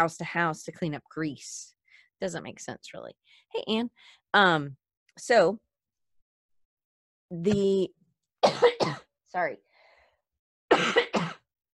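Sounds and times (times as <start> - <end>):
speech: 0.0 - 5.6, 7.3 - 9.7
person coughing: 8.4 - 9.1, 10.7 - 11.5.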